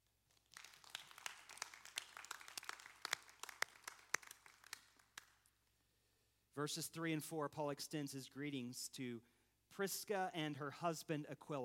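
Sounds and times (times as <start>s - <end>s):
people in a church applauding: 0.5s - 5.0s
speech: 6.6s - 11.6s.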